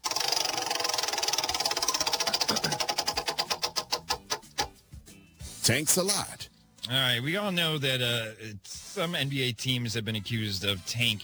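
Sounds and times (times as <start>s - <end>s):
prize wheel being spun and clicking: 0.0s - 4.6s
speech: 5.6s - 11.2s.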